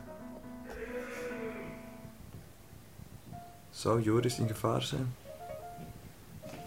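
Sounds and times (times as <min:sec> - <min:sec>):
voice imitating a crocodile roar: 0:00.6 - 0:01.9
speech: 0:03.8 - 0:05.2.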